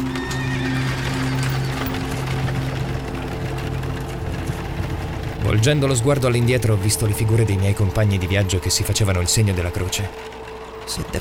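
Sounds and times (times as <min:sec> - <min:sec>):
horses pulling a carriage whinnying: 0:00.0 - 0:05.3
low rumbling drone: 0:00.0 - 0:11.2
steady clatter of carriage horses' hooves: 0:00.0 - 0:11.2
speech: 0:05.5 - 0:11.2.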